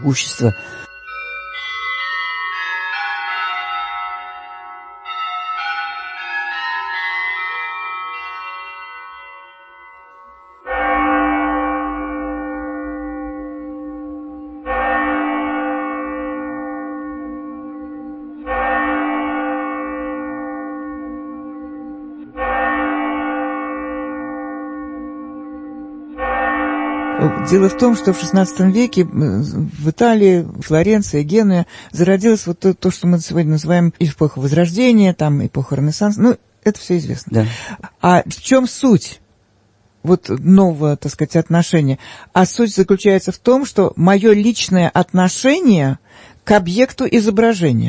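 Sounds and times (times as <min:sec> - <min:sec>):
speech: 0:00.0 - 0:00.9, 0:27.5 - 0:39.2, 0:40.0 - 0:47.8
deep heavy Russian church bell struck: 0:00.0 - 0:31.2
lighter shimmering Russian church bells ringing: 0:00.0 - 0:38.0.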